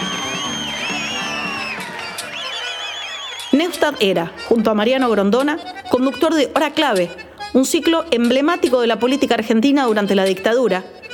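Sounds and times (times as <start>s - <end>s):
large crowd booing: 0.0s - 3.7s
shrill whistles: 0.0s - 3.8s
speech: 3.6s - 11.0s.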